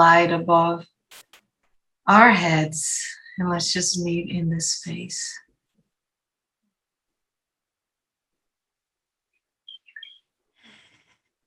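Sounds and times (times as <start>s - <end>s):
speech: 0.0s - 0.9s, 2.1s - 5.4s
short high bird chirps: 9.6s - 10.3s.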